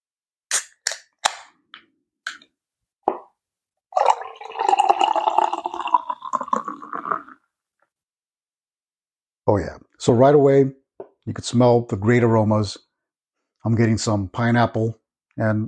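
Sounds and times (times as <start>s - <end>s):
beer brewed with Citra hops bubbling and fizzing: 3.9s - 7.4s
speech: 9.5s - 12.9s, 13.6s - 15.6s.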